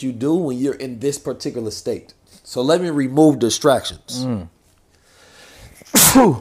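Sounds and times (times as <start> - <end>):
speech: 0.0 - 4.6, 5.9 - 6.3
person sneezing: 5.8 - 6.3.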